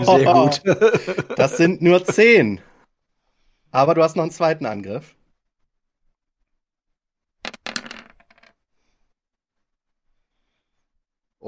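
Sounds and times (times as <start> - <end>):
laughter: 0.0 - 2.6
speech: 0.0 - 2.7, 3.7 - 5.2
many dice rolled for damage in a game on a hard tabletop: 7.4 - 8.7.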